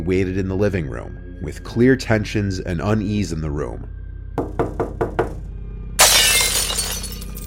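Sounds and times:
speech: 0.0 - 4.9
kitchen window shattering: 6.0 - 7.4
quick sharp bangs on glass: 6.0 - 7.4.

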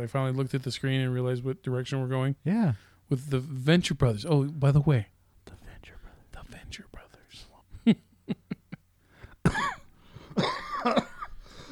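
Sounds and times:
speech: 0.0 - 8.4, 10.4 - 11.1
person coughing dry and raspy: 9.4 - 11.6.

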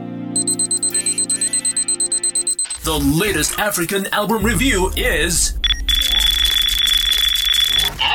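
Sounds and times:
alarm clock sound effect beeping: 0.4 - 3.4, 5.5 - 8.0
speech: 2.9 - 5.6
low sustained synth chords: 4.4 - 6.9.

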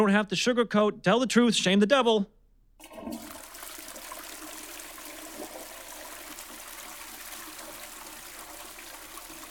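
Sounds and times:
speech: 0.0 - 3.3
toilet flushing: 2.8 - 9.5.

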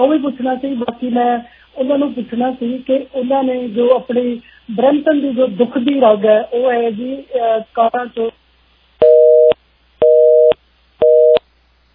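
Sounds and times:
speech: 0.0 - 8.4
telephone busy tone beeps after a call line disconnects: 9.0 - 11.4.

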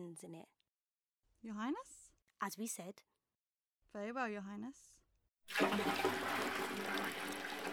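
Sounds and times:
speech: 0.0 - 0.6, 1.4 - 3.1, 3.9 - 7.7
cold stream water pouring into a bath: 5.5 - 7.7.

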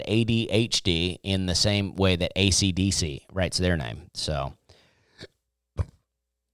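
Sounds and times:
speech: 0.0 - 4.6
soft breathy throat noise: 4.7 - 6.1
short deep burp into the microphone: 5.8 - 6.0.

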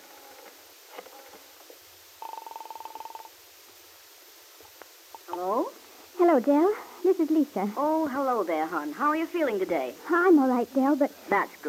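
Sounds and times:
telephone number dialed in a phone booth at a corner drugstore: 2.2 - 3.3
speech: 6.3 - 11.6.

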